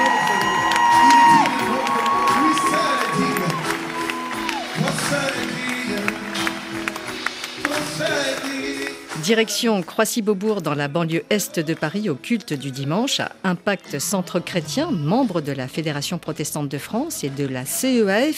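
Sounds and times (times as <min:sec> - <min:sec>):
evangelical Sunday church congregation cheering with whoops and shouting in Croissy-Beaubourg: 0:00.0 - 0:06.3
scattered clapping of a church congregation: 0:00.0 - 0:10.6
speech: 0:09.3 - 0:18.3.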